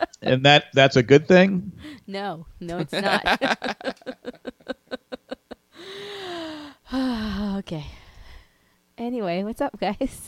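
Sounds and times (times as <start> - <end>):
speech: 0.2 - 4.4, 6.9 - 8.0, 9.0 - 10.2
laughter: 2.7 - 5.6
long drawn-out wheezing breath: 5.7 - 8.8
person having trouble breathing gasping for air: 5.8 - 7.4.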